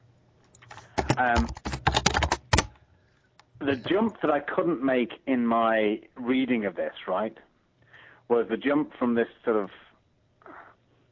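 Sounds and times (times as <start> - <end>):
typing on a computer keyboard: 0.5 - 2.8
speech: 1.2 - 1.6, 3.6 - 7.5, 8.3 - 9.9.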